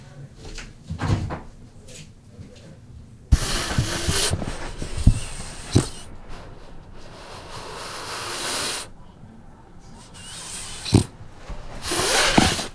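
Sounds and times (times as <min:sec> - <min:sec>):
faint voices: 0:00.0 - 0:12.7
shuffling: 0:00.4 - 0:12.7
French bulldog snorting and grunting at a microphone in an apartment: 0:03.3 - 0:12.7.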